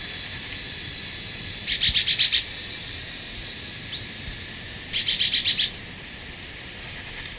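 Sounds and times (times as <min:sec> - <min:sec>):
broad hiss: 0:00.0 - 0:07.3
Chestnut-bellied euphonia Euphonia pectoralis song: 0:01.6 - 0:02.5, 0:04.9 - 0:05.8.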